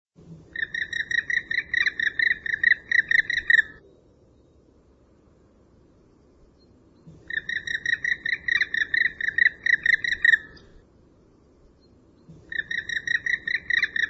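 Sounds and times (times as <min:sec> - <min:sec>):
bird harsh harmonic chattering calls: 0:00.5 - 0:03.8, 0:07.0 - 0:10.8, 0:12.4 - 0:14.0.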